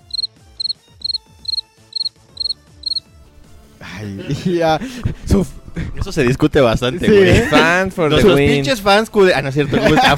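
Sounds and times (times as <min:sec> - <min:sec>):
crickets chirping: 0:00.0 - 0:03.0
laughter: 0:03.8 - 0:05.3, 0:07.0 - 0:08.6, 0:09.6 - 0:10.1
speech: 0:03.8 - 0:10.1.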